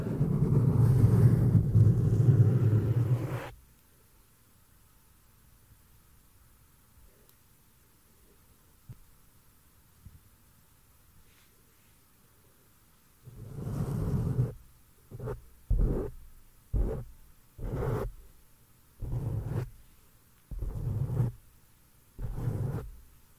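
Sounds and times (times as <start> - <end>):
loud low rubbing on a microphone: 0.0 - 3.5, 13.3 - 16.2, 16.8 - 18.2, 19.0 - 19.8, 20.5 - 21.4, 22.2 - 23.0
faint soft rustles: 11.2 - 12.1.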